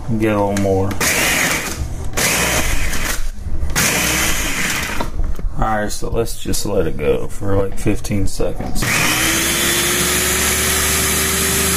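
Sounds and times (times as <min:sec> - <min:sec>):
speech: 0:00.1 - 0:01.2, 0:05.6 - 0:09.4
motorized blender chopping ice into snow: 0:01.0 - 0:03.1, 0:03.8 - 0:05.0, 0:08.8 - 0:11.7.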